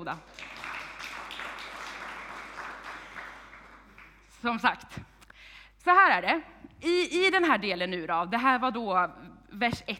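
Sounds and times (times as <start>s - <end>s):
speech: 0.0s - 0.6s, 4.4s - 5.1s, 5.8s - 9.9s
audience applause: 0.2s - 4.4s.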